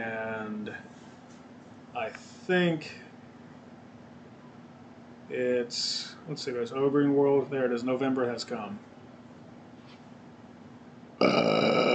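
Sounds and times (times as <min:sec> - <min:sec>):
speech: 0:02.1 - 0:03.0, 0:05.3 - 0:08.9
loud burp: 0:11.2 - 0:11.9.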